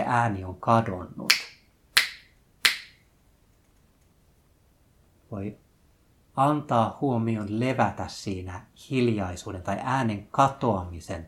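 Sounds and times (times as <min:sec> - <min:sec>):
speech: 0:00.1 - 0:01.3, 0:05.3 - 0:05.6, 0:06.4 - 0:11.2
finger snaps: 0:01.3 - 0:03.0.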